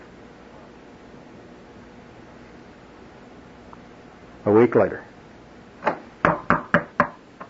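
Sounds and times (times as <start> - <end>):
speech: 4.4 - 5.1
knocking on a door: 6.2 - 7.2.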